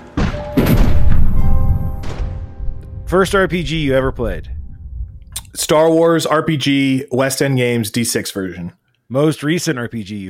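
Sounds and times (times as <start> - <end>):
pirate ship cannon broadside barrage: 0.2 - 5.3
speech: 3.1 - 4.6, 5.5 - 10.2.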